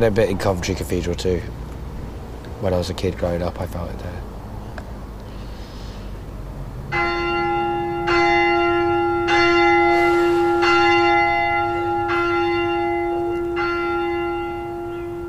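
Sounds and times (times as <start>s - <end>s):
speech: 0.0s - 1.6s, 2.6s - 4.3s
church bells rung by a bell ringer in an irregular sequence: 6.9s - 15.2s.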